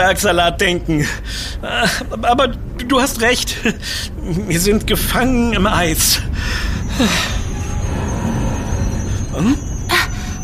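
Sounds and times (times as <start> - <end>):
speech: 0.0 - 7.4, 9.4 - 9.7
train rumbling while braking: 0.0 - 10.4
train brake squeal: 4.8 - 10.4.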